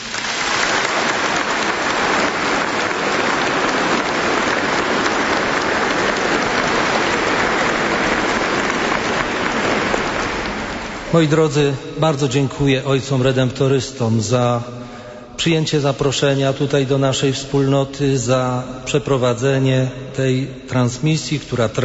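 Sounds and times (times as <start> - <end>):
applause from a large audience: 0.0 - 11.4
speech: 11.1 - 21.8.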